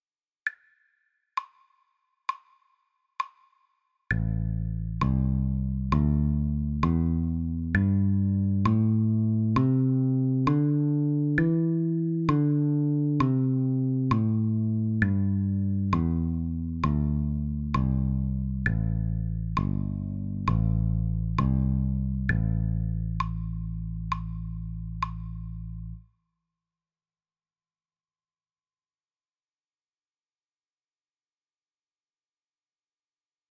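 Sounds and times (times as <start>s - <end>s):
bass playing an A minor pentatonic scale: 4.1s - 26.0s.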